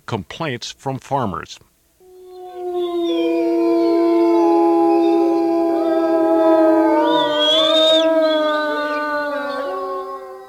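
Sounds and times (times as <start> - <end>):
speech: 0.1 - 1.7
several gray wolves howling together in a chorus: 2.0 - 10.4.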